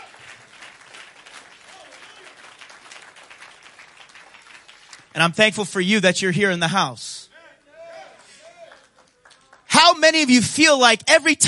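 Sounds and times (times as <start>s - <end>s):
audience applause: 0.0s - 5.2s, 8.0s - 10.4s
speech: 5.2s - 7.2s, 10.3s - 11.4s.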